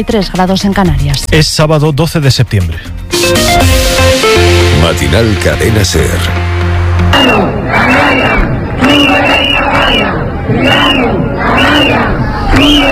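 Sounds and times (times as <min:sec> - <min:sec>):
speech: 0:00.0 - 0:09.2
street protest crowd of hundreds chanting in front of a government delegation office in Ceuta: 0:07.0 - 0:12.9.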